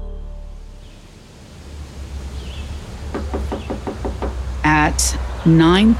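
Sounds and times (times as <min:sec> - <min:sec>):
steady rumbling hiss: 0:00.0 - 0:05.9
firm knocks on a wooden door: 0:03.1 - 0:04.4
speech: 0:04.9 - 0:05.9.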